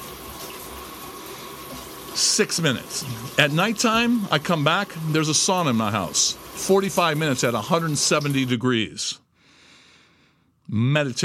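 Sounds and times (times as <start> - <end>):
cold shower water rushing: 0.0 - 8.6
speech: 2.2 - 9.2, 10.7 - 11.2.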